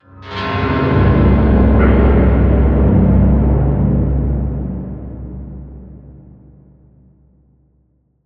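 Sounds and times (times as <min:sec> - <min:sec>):
industrial hits: 0:00.7 - 0:06.0.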